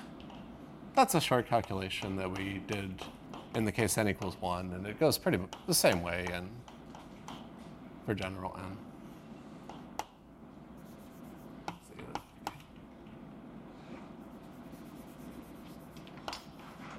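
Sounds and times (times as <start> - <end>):
speech: 1.0 - 6.7, 8.0 - 8.9
writing on a board: 10.8 - 12.3, 14.2 - 16.4.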